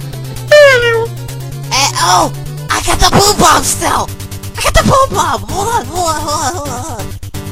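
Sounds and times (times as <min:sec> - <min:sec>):
person imitating a cat meow: 0:00.5 - 0:01.2
speech: 0:02.0 - 0:07.1.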